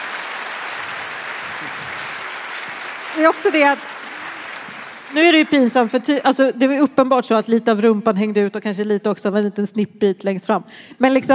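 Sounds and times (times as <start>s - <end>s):
audience applause: 0.0s - 6.2s
speech: 1.6s - 2.1s, 3.1s - 3.9s, 5.1s - 11.3s.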